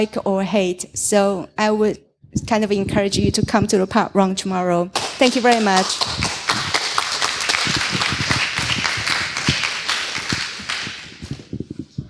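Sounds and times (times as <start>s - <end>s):
speech: 0.0s - 6.4s
thin scattered applause from a small audience: 5.0s - 11.6s.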